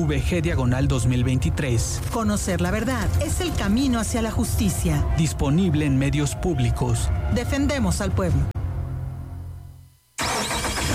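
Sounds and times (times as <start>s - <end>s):
speech: 0.0s - 8.5s
car engine starting: 10.2s - 10.9s.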